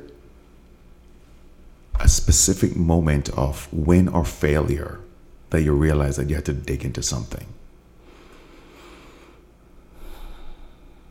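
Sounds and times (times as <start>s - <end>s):
speech: 2.1s - 7.6s
deep breath in and out: 8.0s - 11.0s.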